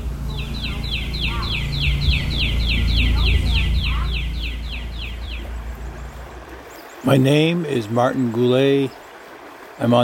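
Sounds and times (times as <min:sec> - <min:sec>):
constant low rumble: 0:00.0 - 0:08.4
bird singing repeated descending chirps in a Gulfport Mississippi backyard: 0:00.3 - 0:06.2
speech: 0:07.1 - 0:09.0, 0:09.8 - 0:10.0.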